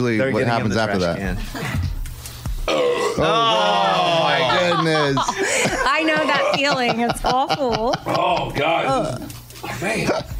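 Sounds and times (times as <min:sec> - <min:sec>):
speech: 0:00.0 - 0:01.9, 0:02.7 - 0:10.3
deep guttural burp: 0:02.7 - 0:03.3
strained raspy vocal groan: 0:02.7 - 0:04.2
laughter: 0:03.2 - 0:08.6.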